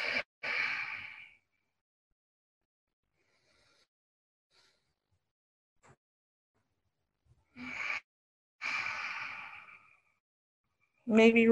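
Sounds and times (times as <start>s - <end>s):
slow deep breathing: 0.0s - 1.6s, 3.0s - 5.2s, 8.6s - 10.2s.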